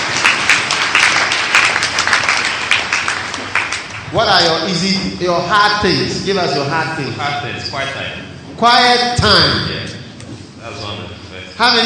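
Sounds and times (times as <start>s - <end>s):
audience clapping: 0.0s - 4.8s
speech: 4.1s - 10.0s, 10.7s - 11.8s.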